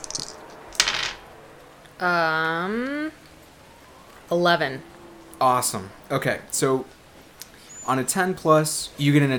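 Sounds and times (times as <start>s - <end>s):
two six-sided dice rolling on a hard surface: 0.0s - 1.2s
speech: 2.0s - 3.2s, 4.3s - 7.0s, 7.8s - 9.3s.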